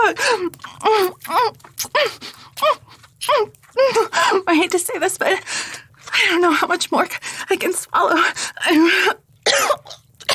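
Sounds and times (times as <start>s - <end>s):
speech: 0.1s - 2.8s, 3.4s - 10.0s
woman coughing harshly: 9.5s - 10.3s.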